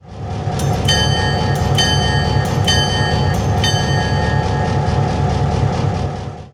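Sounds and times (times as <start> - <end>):
Chinese bronze bell: 0.6 - 5.4.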